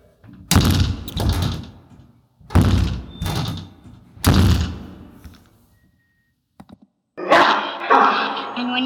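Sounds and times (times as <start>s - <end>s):
door being shut: 0.3s - 5.0s.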